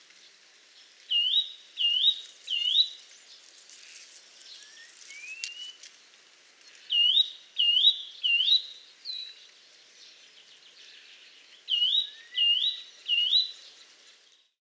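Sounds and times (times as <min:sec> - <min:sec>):
Eurasian nuthatch Sitta europaea giving clear rising whistled calls: 0:01.1 - 0:03.0, 0:04.5 - 0:05.8, 0:06.8 - 0:09.4, 0:11.7 - 0:13.6.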